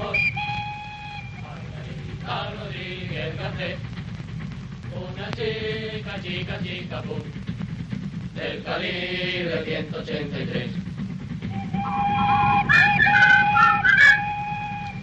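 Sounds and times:
train whistle: 0:00.0 - 0:01.6, 0:11.5 - 0:15.0
continuous low rumble of the train: 0:00.0 - 0:15.0
speech: 0:02.3 - 0:04.0, 0:05.2 - 0:07.5, 0:08.4 - 0:10.9, 0:11.9 - 0:13.8.

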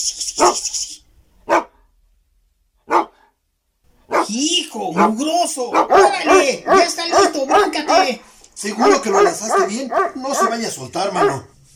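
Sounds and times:
hissing noise: 0:00.0 - 0:01.1
dog barking: 0:00.4 - 0:00.7, 0:01.4 - 0:01.8, 0:02.8 - 0:03.3, 0:04.0 - 0:11.5
speech: 0:04.3 - 0:11.5.

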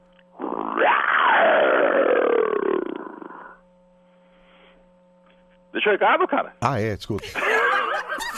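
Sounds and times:
lion roar as an answering-machine greeting: 0:00.4 - 0:03.6
speech: 0:05.8 - 0:07.6
laughter: 0:07.2 - 0:08.3.

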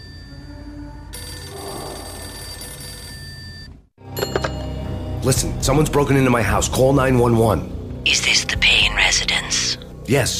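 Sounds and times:
telephone ringing: 0:01.1 - 0:04.6
speech: 0:05.2 - 0:09.3, 0:10.1 - 0:10.3.

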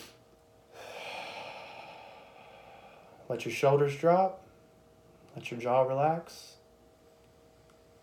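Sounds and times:
slow deep breath during a guided relaxation exercise: 0:00.0 - 0:03.3
speech: 0:03.3 - 0:04.4, 0:05.4 - 0:06.6.

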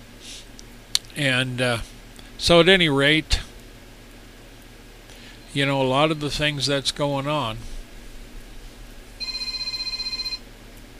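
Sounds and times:
speech: 0:01.2 - 0:03.4, 0:05.5 - 0:07.7
telephone ringing with an electronic trill: 0:09.2 - 0:10.4.

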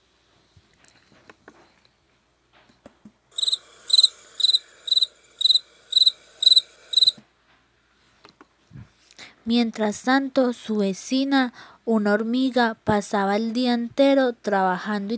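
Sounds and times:
cricket chirping: 0:03.3 - 0:07.2
speech: 0:09.5 - 0:15.1.

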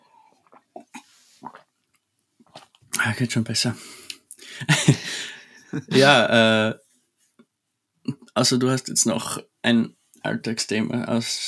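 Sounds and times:
person sipping water: 0:00.2 - 0:02.8
person swallowing water: 0:00.4 - 0:01.7, 0:05.9 - 0:06.3
speech: 0:03.0 - 0:04.0, 0:04.6 - 0:05.1, 0:05.7 - 0:06.8, 0:08.4 - 0:11.4
laughter: 0:04.7 - 0:06.5.

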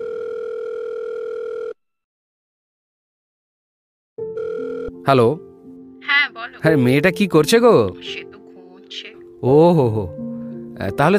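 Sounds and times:
steady electronic telephone tone while a call is placed: 0:00.0 - 0:01.8, 0:04.3 - 0:05.0
speech: 0:05.1 - 0:05.5, 0:06.3 - 0:08.3, 0:08.9 - 0:11.1.

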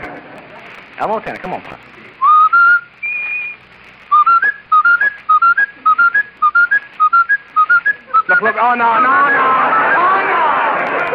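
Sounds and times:
speech: 0:01.0 - 0:02.0, 0:08.4 - 0:10.1
whistled imitation of a skipping broken record: 0:02.2 - 0:10.0.

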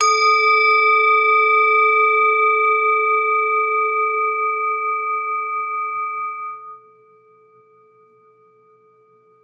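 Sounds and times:
handmade metal singing bowl tuned to A ringing with overtones: 0:00.0 - 0:09.4.

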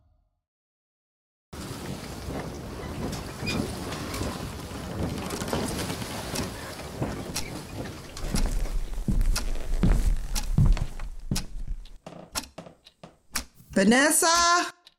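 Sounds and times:
heavy footsteps thudding: 0:01.6 - 0:13.8
speech: 0:13.8 - 0:14.7.

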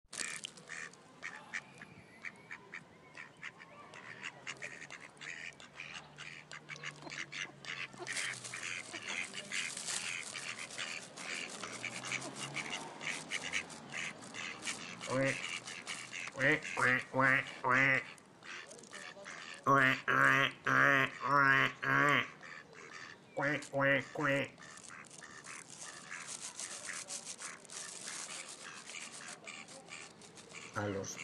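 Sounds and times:
ducklings quacking: 0:00.2 - 0:31.2
rustling and scraping noise: 0:07.9 - 0:17.1, 0:24.5 - 0:31.2
speech: 0:16.4 - 0:18.0.

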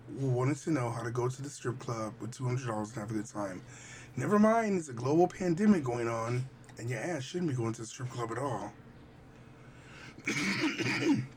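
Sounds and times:
speech: 0:00.2 - 0:08.8, 0:10.2 - 0:11.3
throat clearing from a tickle at the back of the throat: 0:10.2 - 0:11.3.

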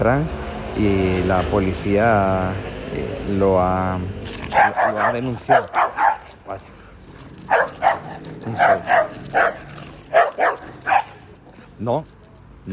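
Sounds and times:
speech: 0:00.0 - 0:05.8, 0:06.5 - 0:06.7, 0:08.5 - 0:09.6, 0:11.8 - 0:12.2
dog barking sharply: 0:04.5 - 0:06.6, 0:07.5 - 0:11.3.

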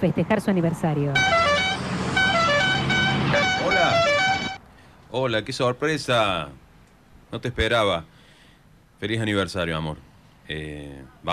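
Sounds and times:
speech: 0:00.0 - 0:01.9, 0:05.1 - 0:06.6, 0:07.3 - 0:08.1, 0:09.0 - 0:11.3
car horn honking in short bright blasts: 0:01.1 - 0:04.6.

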